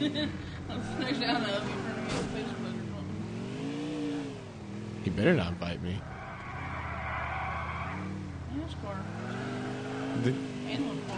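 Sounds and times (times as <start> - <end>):
speech: 0.0 - 2.6, 5.1 - 6.2, 10.2 - 11.1
video game car engine drone: 0.0 - 11.1
video game car tire squeals: 0.5 - 2.9, 5.9 - 11.0.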